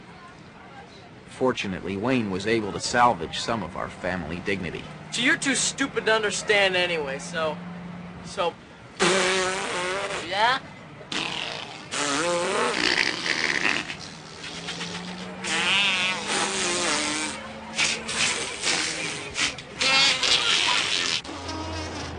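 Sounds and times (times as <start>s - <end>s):
speech: 1.4s - 9.1s, 10.4s - 10.7s
children on a bus blowing raspberry-style fart noises: 9.0s - 10.3s, 11.1s - 22.1s.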